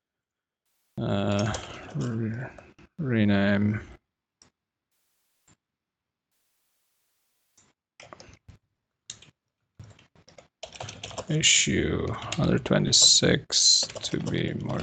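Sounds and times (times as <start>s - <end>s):
speech: 1.0s - 3.9s, 11.3s - 14.8s
computer keyboard typing: 8.0s - 8.4s, 9.1s - 14.8s.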